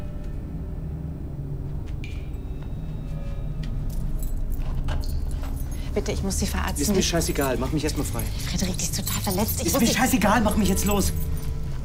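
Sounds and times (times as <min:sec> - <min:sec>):
low engine rumble: 0:00.0 - 0:11.8
metallic keys jangling and clinking: 0:03.8 - 0:11.6
speech: 0:06.0 - 0:11.2.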